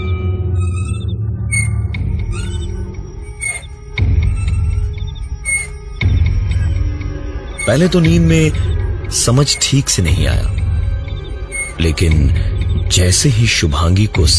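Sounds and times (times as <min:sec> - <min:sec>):
rocking baby cradle creaking: 0:00.5 - 0:06.8, 0:07.6 - 0:12.2
speech: 0:07.7 - 0:10.6, 0:11.8 - 0:14.3.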